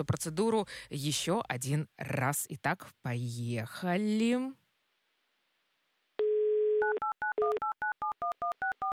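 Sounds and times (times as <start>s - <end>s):
speech: 0.0s - 4.6s
telephone dial tone: 6.2s - 8.9s.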